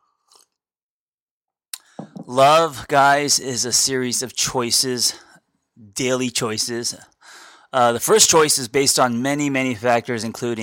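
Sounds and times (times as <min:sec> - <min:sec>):
person sipping coffee: 0:00.2 - 0:00.6
speech: 0:02.3 - 0:10.6.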